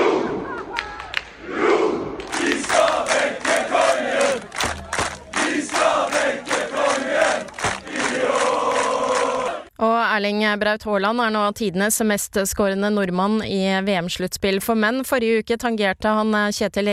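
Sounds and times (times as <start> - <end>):
large crowd of football fans cheering and chanting in the streets of Oslo at night: 0.0 - 9.7
thumps: 7.4 - 8.0
speech: 10.2 - 16.9.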